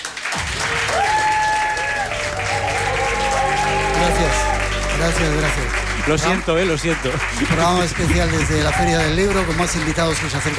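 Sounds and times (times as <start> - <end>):
audience applause at a book fair: 0.0 - 10.5
whistle-like cheers: 0.6 - 5.2, 8.6 - 9.3
speech: 5.0 - 10.5.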